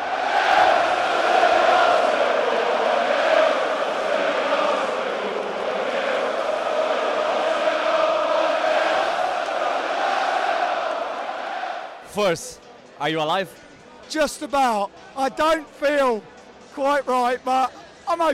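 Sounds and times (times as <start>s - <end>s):
large football crowd chanting: 0.0s - 12.1s
speech: 12.2s - 18.3s.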